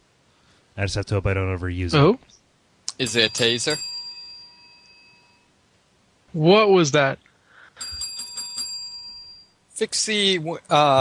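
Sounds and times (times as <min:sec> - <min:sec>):
speech: 0:00.8 - 0:02.4, 0:03.0 - 0:03.9, 0:06.3 - 0:08.0, 0:09.8 - 0:11.0
hotel service bell being rung: 0:03.0 - 0:05.6, 0:07.8 - 0:09.6.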